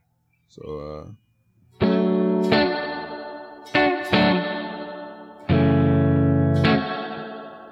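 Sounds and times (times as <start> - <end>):
speech: 0.5 - 1.3
distorted electric guitar chords with amp-modeler spring reverb: 1.8 - 7.6.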